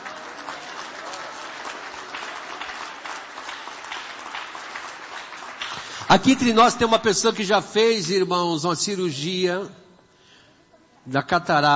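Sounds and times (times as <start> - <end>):
congregation applauding: 0.0 - 6.9
speech: 6.1 - 9.8, 11.1 - 11.7.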